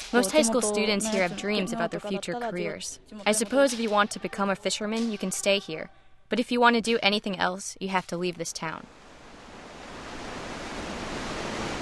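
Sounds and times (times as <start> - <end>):
speech: 0.1 - 9.0
surf along a shore: 8.9 - 11.8
wind along a shore: 9.0 - 11.8.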